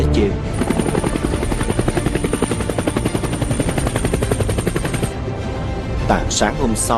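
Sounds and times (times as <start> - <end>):
helicopter rotor blades chopping: 0.3 - 5.3
speech: 6.1 - 6.9.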